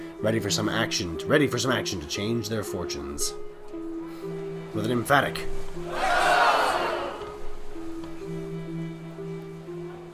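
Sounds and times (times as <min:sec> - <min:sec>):
speech: 0:00.2 - 0:03.5, 0:04.2 - 0:06.1
group of about a dozen voices shouting huzzah battle cry: 0:05.9 - 0:07.2.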